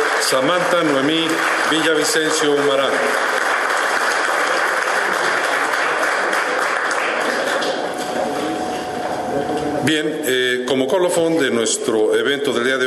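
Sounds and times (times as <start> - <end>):
crowd applauding the winner of a contest at a university event: 0.0 - 9.0
speech: 0.3 - 3.4, 9.8 - 12.8.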